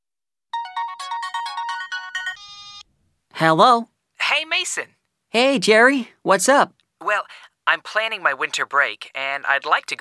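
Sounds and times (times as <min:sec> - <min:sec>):
bright electronic telephone ringtone: 0:00.6 - 0:02.9
speech: 0:03.4 - 0:03.9, 0:04.6 - 0:10.0.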